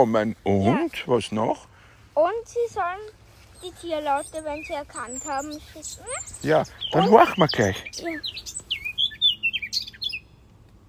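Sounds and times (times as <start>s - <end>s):
speech: 0.0s - 8.6s
small bird singing with chirps and warbling whistles: 2.5s - 10.8s.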